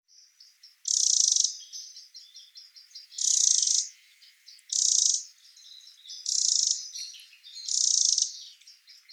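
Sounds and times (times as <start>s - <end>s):
Eurasian wren Troglodytes troglodytes singing: 0.1s - 9.1s.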